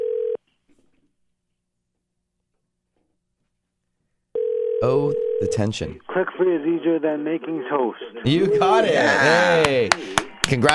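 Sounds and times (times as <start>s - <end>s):
telephone tone as a number is dialed: 0.0s - 0.4s, 4.4s - 5.4s
speech: 4.8s - 10.7s.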